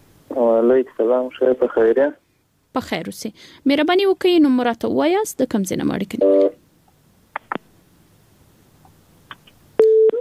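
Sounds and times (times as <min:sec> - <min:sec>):
speech: 0:00.6 - 0:02.2, 0:02.8 - 0:06.6
telephone busy tone after a caller's line disconnected: 0:06.2 - 0:06.6, 0:09.8 - 0:10.1.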